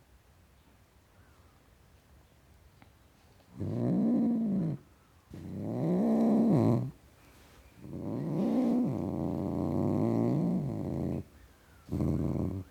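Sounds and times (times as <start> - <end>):
male tom cat growling: 3.5 - 7.0, 7.8 - 12.6.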